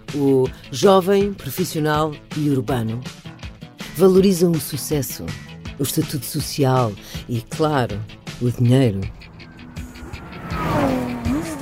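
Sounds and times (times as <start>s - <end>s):
speech: 0.1s - 3.2s, 4.0s - 9.3s
sports car engine revving as the car drives past: 9.0s - 11.6s
faint tire squeal: 9.2s - 11.6s.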